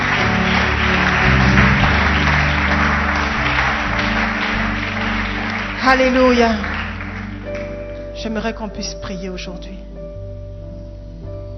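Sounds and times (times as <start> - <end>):
congregation applauding during a church service: 0.0 - 8.2
speech: 5.9 - 6.7, 8.2 - 9.9.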